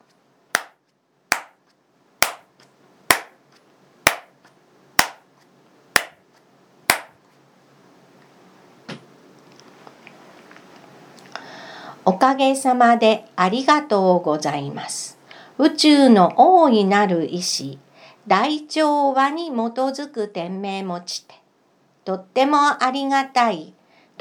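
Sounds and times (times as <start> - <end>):
sharp ritual hand claps after bowing during a prayer recitation: 0.6 - 1.6, 2.2 - 2.5, 3.1 - 3.4, 4.1 - 4.4, 5.0 - 5.2, 6.0 - 6.2, 6.9 - 7.2
speech: 12.1 - 21.4, 22.1 - 24.1.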